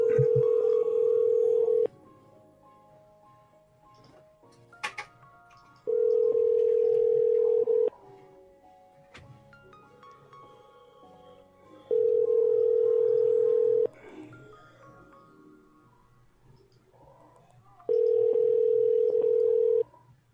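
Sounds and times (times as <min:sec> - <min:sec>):
telephone line tone: 0:00.0 - 0:01.9, 0:05.9 - 0:07.9, 0:11.9 - 0:14.0, 0:17.9 - 0:19.9.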